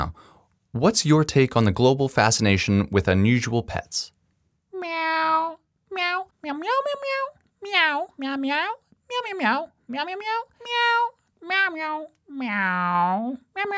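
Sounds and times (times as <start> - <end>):
speech: 0.0 - 4.2, 6.4 - 13.7
cat meowing loudly: 4.8 - 8.2, 10.0 - 12.9.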